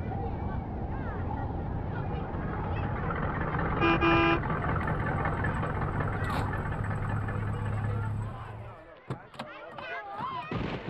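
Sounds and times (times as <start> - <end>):
road noise: 0.0 - 9.8
engine idling: 0.6 - 9.0
truck horn honking: 3.2 - 7.3.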